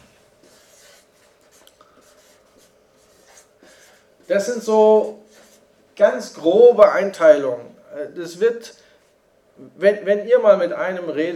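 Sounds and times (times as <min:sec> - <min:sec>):
handwriting scratching on a surface: 0:00.4 - 0:04.4, 0:05.0 - 0:05.6
speech: 0:04.3 - 0:05.2, 0:06.0 - 0:08.8, 0:09.6 - 0:11.3.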